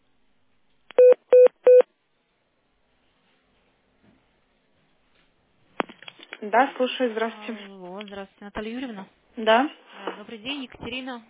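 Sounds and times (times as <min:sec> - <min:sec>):
electronic telephone keypad tones of a number being dialed: 0:01.0 - 0:01.9
speech: 0:06.4 - 0:11.2.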